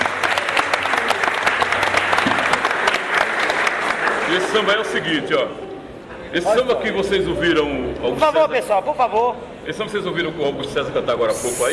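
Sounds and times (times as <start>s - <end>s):
audience applause at a samba performance: 0.0s - 5.0s
speech: 4.3s - 5.7s, 6.3s - 11.7s.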